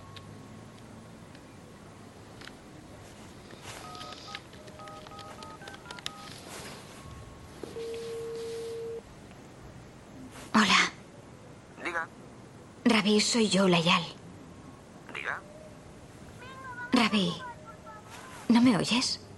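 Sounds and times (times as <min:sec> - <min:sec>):
faint hiss: 0:00.0 - 0:19.3
bedroom telephone keypad touch-tone beeps: 0:03.8 - 0:09.0
speech: 0:12.9 - 0:14.2, 0:18.6 - 0:19.2.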